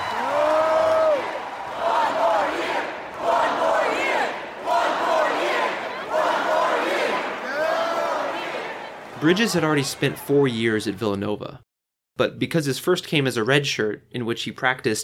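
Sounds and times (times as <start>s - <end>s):
huge arena crowd chanting a short phrase in unison at a rally: 0.2s - 10.2s
speech: 9.2s - 15.0s.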